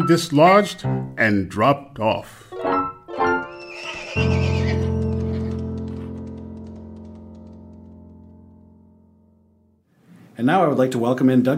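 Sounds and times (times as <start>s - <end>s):
speech: 0.0s - 2.4s, 10.4s - 11.5s
horse whinnying in a shrill quavering burst: 3.5s - 5.6s
horses running away along a road: 3.6s - 8.3s.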